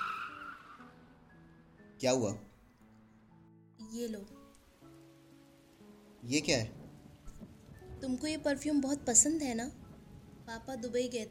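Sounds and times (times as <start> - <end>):
car pulling over and braking to a stop in the rain: 0.0 - 0.9
car tires squealing: 0.0 - 1.2
speech: 2.0 - 2.5, 3.8 - 4.4, 6.2 - 6.8, 8.0 - 9.8, 10.5 - 11.2
raindrops pattering on a car: 3.8 - 11.2.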